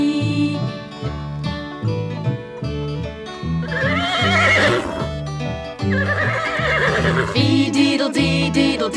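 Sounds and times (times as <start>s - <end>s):
bouncy steady musical accompaniment with plodding bass line: 0.3s - 8.9s
horse whinnying with a shaky wavering neigh: 3.6s - 5.2s, 5.9s - 7.4s.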